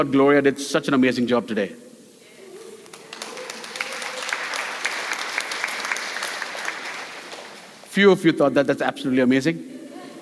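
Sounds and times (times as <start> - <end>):
speech: 0.0 - 1.8, 8.0 - 9.8
small audience clapping: 2.6 - 8.0.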